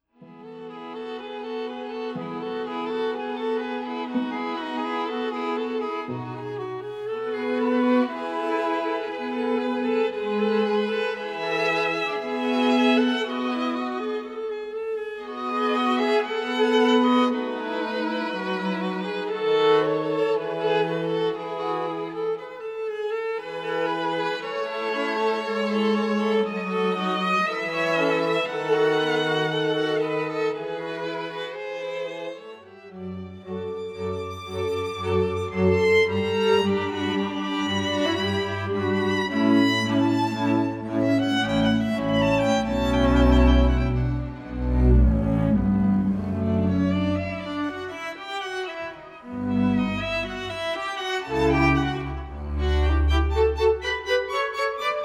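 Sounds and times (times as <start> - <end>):
classical music: 0.0 - 55.0.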